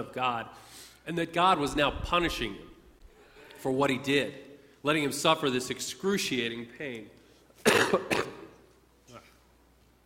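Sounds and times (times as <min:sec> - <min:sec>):
speech: 0:00.0 - 0:02.7, 0:03.6 - 0:08.2
preacher clearing a tickle from his throat during a sermon: 0:07.6 - 0:08.6.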